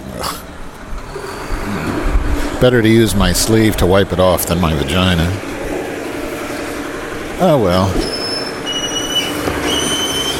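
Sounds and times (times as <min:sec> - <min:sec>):
garbage truck brakes letting out a piercing high squeal: 0:00.0 - 0:10.3
garbage truck rumbling: 0:00.0 - 0:10.3
speech: 0:02.6 - 0:05.6, 0:07.4 - 0:08.1.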